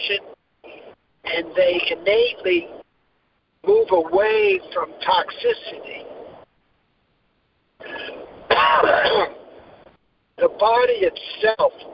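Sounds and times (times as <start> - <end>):
speech: 0.1 - 0.4, 1.3 - 2.8, 3.6 - 6.0, 10.4 - 11.9
single raspy cough: 7.8 - 9.4.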